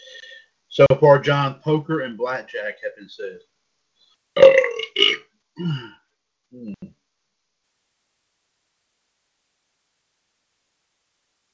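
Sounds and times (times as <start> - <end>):
speech: 0.8 - 3.5, 4.4 - 7.0
loud belch in rough bursts: 4.4 - 5.9.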